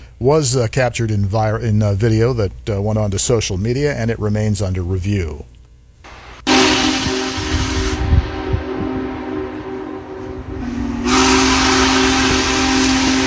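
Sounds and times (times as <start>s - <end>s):
speech: 0.2s - 5.5s
steam locomotive whistle: 6.4s - 13.2s
rumbling train noise: 6.5s - 13.2s
hiss of escaping steam from a steam locomotive: 10.7s - 13.2s.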